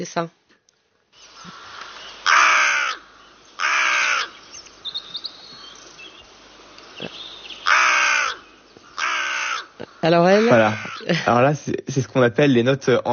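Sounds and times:
speech: 0.0s - 0.4s, 10.0s - 13.1s
outdoor ambience: 0.0s - 13.1s
quiet chirps: 1.1s - 11.3s
carrion crow cawing: 1.5s - 4.5s, 7.0s - 11.1s.

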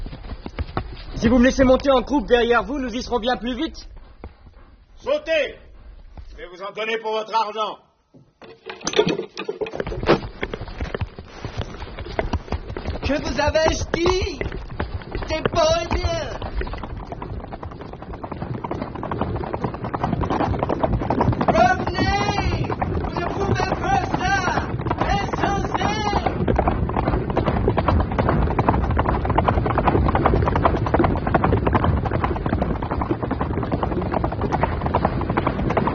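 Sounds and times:
horses galloping along a trail: 0.0s - 6.7s, 8.6s - 35.9s
speech: 1.2s - 3.9s, 5.0s - 5.6s, 6.4s - 7.8s, 8.5s - 9.6s, 13.1s - 14.5s, 15.3s - 16.8s.

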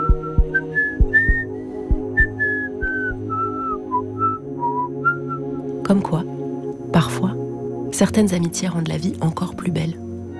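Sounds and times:
stout man whistling a cheerful melody: 0.0s - 5.5s
soft rhythmic musical backing with light plucked beats: 0.0s - 10.3s
speech: 5.9s - 6.3s, 6.9s - 7.4s, 8.0s - 10.0s.

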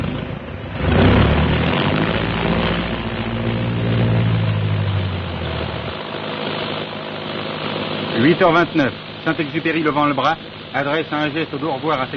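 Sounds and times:
airplane engines starting up with a roar: 0.0s - 12.1s
speech: 8.3s - 12.1s.

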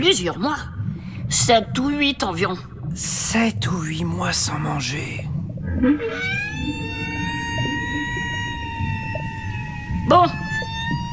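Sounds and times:
speech: 0.0s - 6.8s, 10.1s - 10.4s
low underwater rumble: 0.0s - 11.1s
whale calling with a long tonal moan: 5.6s - 11.1s.

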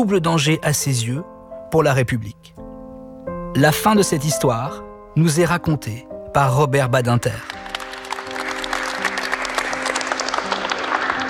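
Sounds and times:
speech: 0.0s - 2.6s, 3.6s - 7.6s
applause from a large assembly in a parliamentary chamber: 7.3s - 11.2s.

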